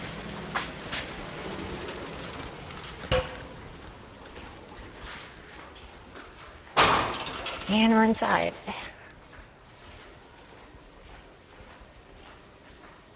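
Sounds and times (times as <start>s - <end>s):
rushing clatter: 0.0s - 5.0s
building doors opening as people enter: 0.0s - 8.1s
steady hum: 0.0s - 13.1s
thud: 6.8s - 7.3s
speech: 7.7s - 8.8s.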